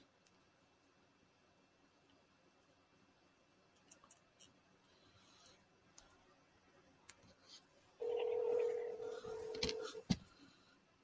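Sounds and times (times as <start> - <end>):
steady electronic phone tone: 8.0 - 10.0.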